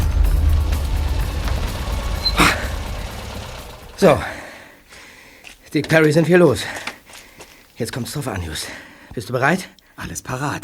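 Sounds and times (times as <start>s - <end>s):
car engine rumbling while pulling over: 0.0s - 4.6s
car tires crunching on sandy shoulder: 0.0s - 4.6s
speech: 4.0s - 4.4s, 5.7s - 6.9s, 7.8s - 10.6s.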